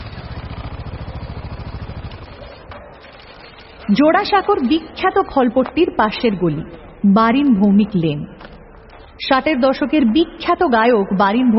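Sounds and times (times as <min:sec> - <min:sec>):
motorbike engine at high speed: 0:00.0 - 0:05.0
speech: 0:03.9 - 0:08.4, 0:09.2 - 0:11.5.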